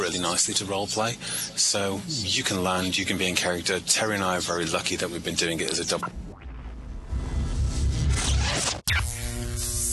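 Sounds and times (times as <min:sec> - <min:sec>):
low electrical hum: 0:00.0 - 0:08.0
crackly static: 0:00.0 - 0:09.9
speech: 0:00.1 - 0:06.4
steady buzzing drone: 0:06.3 - 0:09.9.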